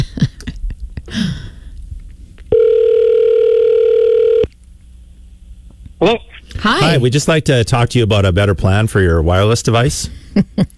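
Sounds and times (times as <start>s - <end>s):
phone ringback tone on an outgoing call: 2.5s - 4.5s
speech: 6.0s - 10.7s.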